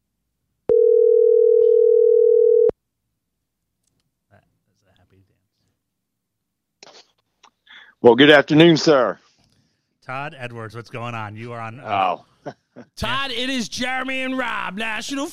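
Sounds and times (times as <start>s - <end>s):
loud steady telephone tone: 0.7s - 2.7s
speech: 8.0s - 9.2s, 10.1s - 15.3s.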